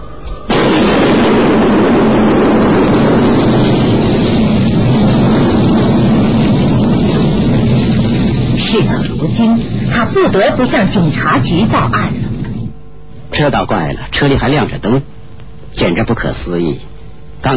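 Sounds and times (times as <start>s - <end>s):
car being blown apart by explosion: 0.5s - 12.8s
sustained roaring rumble after explosion: 0.5s - 13.3s
speech: 8.8s - 12.2s, 13.4s - 15.1s, 15.8s - 17.5s.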